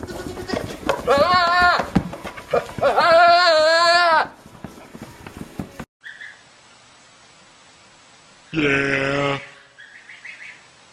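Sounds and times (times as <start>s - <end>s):
goat bleat: 0.0s - 4.4s.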